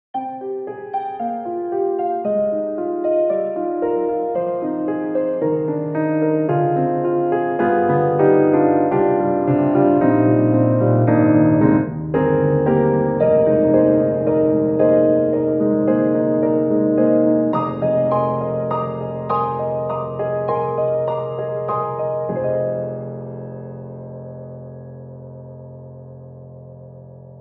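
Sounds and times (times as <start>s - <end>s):
tubular keys on Steinberg HALion 7: 0.2s - 26.9s.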